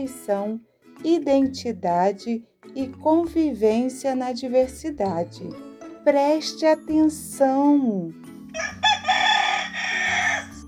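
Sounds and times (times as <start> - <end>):
speech: 0.0 - 8.8
rooster crowing: 8.5 - 10.6.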